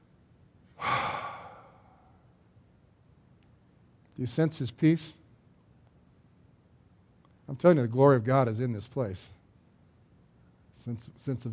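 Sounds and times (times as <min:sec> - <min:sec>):
deep breath drawn in during a church sermon: 0:00.8 - 0:02.3
speech: 0:04.2 - 0:05.2, 0:07.5 - 0:09.4, 0:10.8 - 0:11.5.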